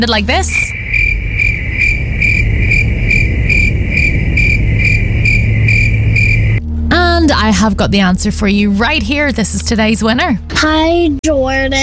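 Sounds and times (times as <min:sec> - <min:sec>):
speech: 0:00.0 - 0:00.8, 0:07.2 - 0:11.8
low hum: 0:00.0 - 0:11.6
crickets chirping: 0:00.5 - 0:06.6.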